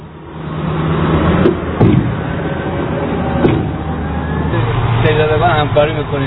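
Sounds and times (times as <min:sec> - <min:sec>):
small and large loaders and trucks clearing flood mud from streets of Pol-e Dokhtar: 0:00.0 - 0:06.2
metallic clunks and bangs: 0:01.4 - 0:02.2, 0:03.4 - 0:03.8
speech: 0:05.8 - 0:06.2.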